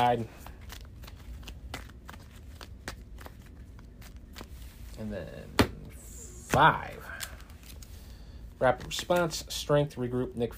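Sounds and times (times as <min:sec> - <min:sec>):
speech: 0:00.0 - 0:00.5, 0:05.0 - 0:05.6, 0:06.6 - 0:07.2, 0:08.6 - 0:10.5
deck of cards being shuffled: 0:00.0 - 0:08.1.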